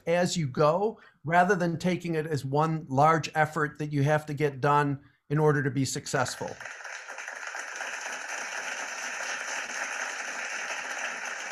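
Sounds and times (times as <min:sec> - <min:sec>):
speech: 0:00.0 - 0:06.9
crowd applauding with many hands clapping: 0:06.5 - 0:11.5.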